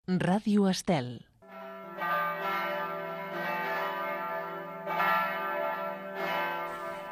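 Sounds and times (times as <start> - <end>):
speech: 0.1 - 1.3
church bells ringing: 1.4 - 7.1.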